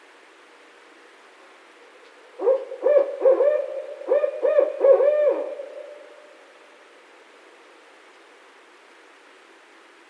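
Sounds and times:
barred owl hooting: 2.4s - 6.3s.

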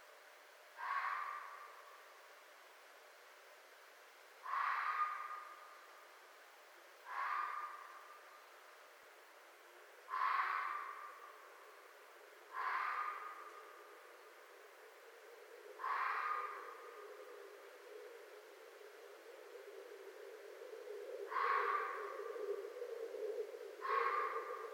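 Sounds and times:
faint steady background hiss: 0.0s - 24.7s
red fox giving harsh hoarse ringing barks: 0.8s - 1.9s, 4.4s - 5.7s, 7.0s - 8.2s, 10.1s - 11.4s, 12.5s - 13.8s, 15.8s - 16.9s, 21.3s - 22.2s, 23.8s - 24.7s.

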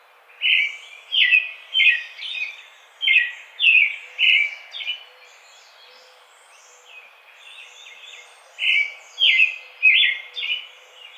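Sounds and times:
American robin singing: 0.4s - 6.9s, 7.5s - 11.1s.

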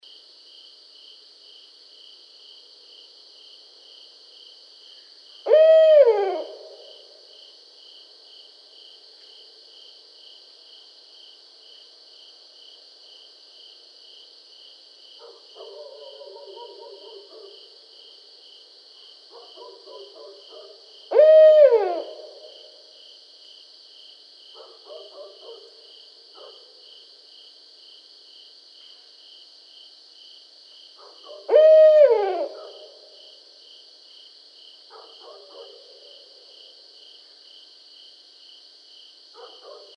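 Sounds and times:
barred owl calling: 5.5s - 7.0s, 21.1s - 22.6s, 31.3s - 32.9s.

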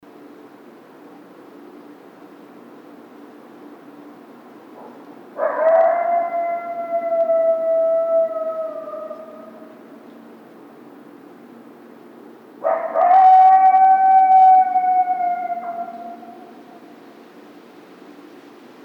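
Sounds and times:
coyote howling: 4.8s - 10.1s, 12.6s - 17.0s.

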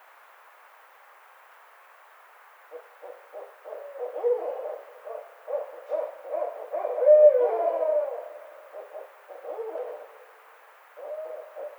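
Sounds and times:
barred owl hooting: 2.7s - 10.3s, 11.0s - 11.7s.

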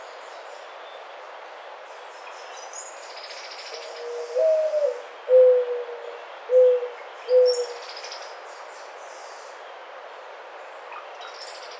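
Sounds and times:
Mourning Dove cooing: 4.0s - 7.8s.

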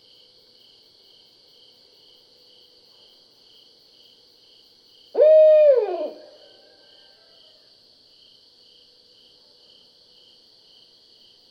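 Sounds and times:
Barred owl hooting: 5.2s - 6.7s.

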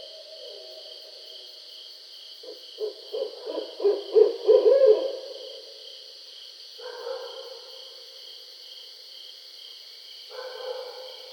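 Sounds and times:
barred owl hooting: 2.4s - 5.3s.

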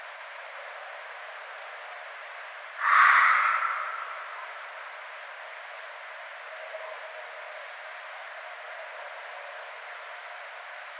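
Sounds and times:
red fox scream: 2.8s - 4.6s.

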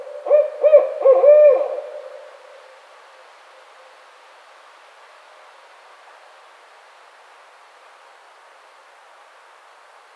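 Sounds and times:
barred owl hooting: 0.0s - 2.8s.

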